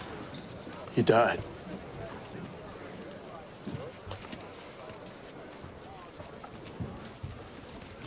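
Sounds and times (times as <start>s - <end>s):
murmur of voices: 0.0s - 8.0s
outdoor noise: 0.0s - 8.0s
stallion hooves clip-clopping: 0.0s - 8.0s
speech: 1.0s - 1.5s.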